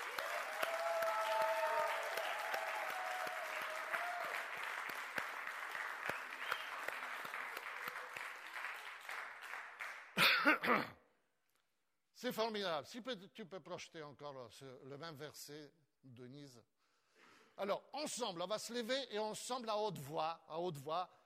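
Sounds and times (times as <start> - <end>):
church congregation applauding at a worship service: 0.0 - 10.3
speech: 10.4 - 11.0, 12.2 - 16.7, 17.6 - 21.2.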